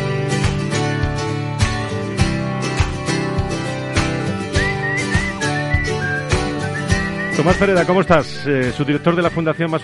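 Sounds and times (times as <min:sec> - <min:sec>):
upbeat instrumental tune with punchy beats: 0:00.0 - 0:09.8
bright whistled melody: 0:03.7 - 0:09.8
speech: 0:07.4 - 0:09.8.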